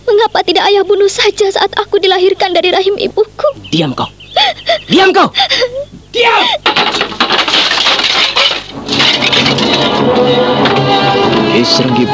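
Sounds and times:
speech: 0.3 - 7.8, 11.6 - 12.1
wooden chair kicked and smashed apart, cracking and splintering: 6.6 - 10.8
crunching clattering wooden chair debris: 6.6 - 11.8.

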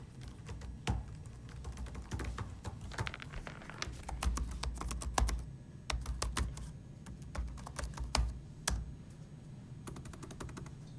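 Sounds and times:
keyboard typing: 0.0 - 8.9, 9.8 - 10.9.

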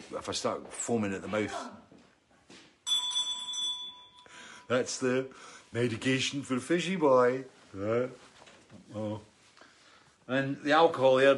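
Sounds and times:
speech: 0.1 - 1.8, 4.7 - 9.3, 10.3 - 11.3
hand bell ringing: 2.8 - 4.7
soft rustle: 7.2 - 10.4.

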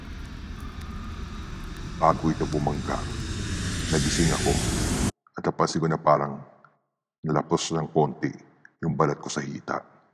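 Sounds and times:
airplane engine roar with deep low rumble: 0.0 - 5.1
speech: 2.0 - 3.3, 3.9 - 6.5, 7.2 - 9.9.

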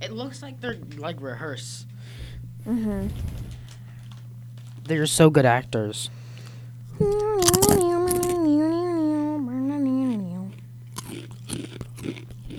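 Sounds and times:
speech: 0.0 - 3.6, 4.9 - 6.2, 7.0 - 7.5
steady low hum: 0.0 - 12.5
crunchy food chewing: 1.8 - 12.5
long wavering vocal tone: 2.2 - 3.8, 6.9 - 10.8.

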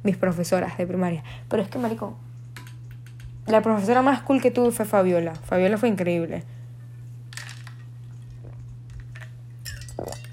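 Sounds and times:
speech: 0.0 - 2.3, 3.4 - 6.6
steady low electrical hum: 0.0 - 10.3
person sipping water: 8.0 - 9.2, 9.8 - 10.3
glass clinking while drinking water: 9.6 - 10.3.

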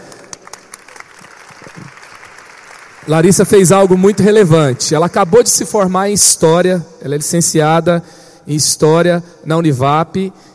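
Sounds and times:
audience applause with many hands clapping: 0.0 - 5.5
speech: 3.1 - 10.5.

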